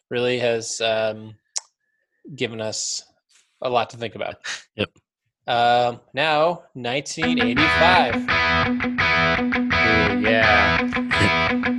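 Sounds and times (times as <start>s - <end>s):
speech: 0.1s - 1.4s, 2.3s - 11.5s
voice over music: 7.2s - 8.3s, 9.8s - 11.7s
music from a recording with heavy reverb: 7.2s - 11.7s.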